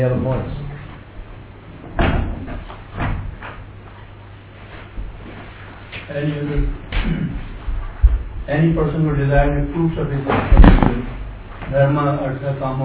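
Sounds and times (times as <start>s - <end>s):
speech: 0.0s - 0.6s, 6.2s - 7.2s, 8.5s - 12.8s
door shutting with solid thuds: 1.9s - 3.3s.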